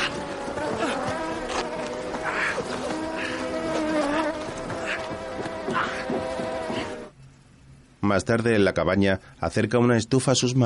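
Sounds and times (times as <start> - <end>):
dense swarm of wasps buzzing: 0.0 - 7.1
speech: 8.1 - 10.6.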